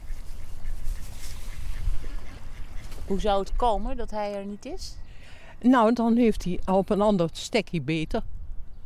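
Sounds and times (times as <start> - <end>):
group of ducks quacking: 0.0 - 3.4
speech: 3.1 - 5.0, 5.6 - 8.4.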